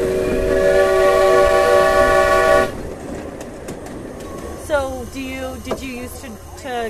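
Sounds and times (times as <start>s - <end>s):
steam locomotive whistle blowing with boiler pressure at 125 pounds: 0.0s - 2.8s
low rumble of noise: 0.0s - 6.8s
speech: 6.1s - 6.8s.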